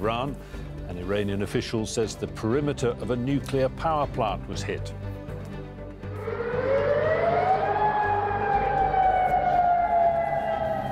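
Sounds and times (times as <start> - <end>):
speech: 0.0 - 5.1
air raid alert siren wailing during strikes on military sites: 6.0 - 10.8.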